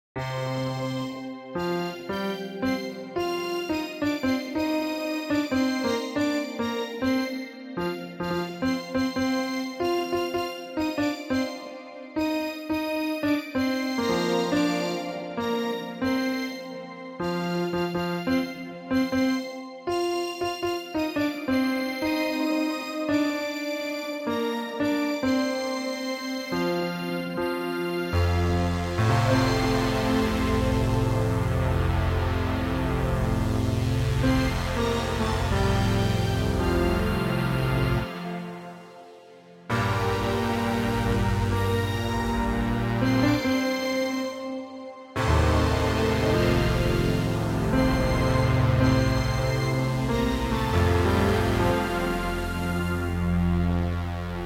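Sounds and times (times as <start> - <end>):
musical instruments: 0.2 - 54.4.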